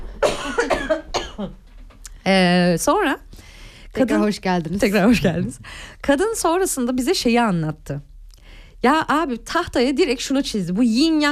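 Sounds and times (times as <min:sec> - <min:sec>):
person coughing: 0:00.2 - 0:01.6
speech: 0:00.5 - 0:01.6, 0:02.3 - 0:03.2, 0:04.0 - 0:08.1, 0:08.8 - 0:11.3.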